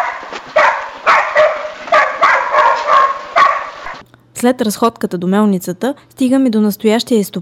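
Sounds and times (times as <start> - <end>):
dogs barking at a deserted-looking mill: 0.0 - 4.0
speech: 4.4 - 7.3.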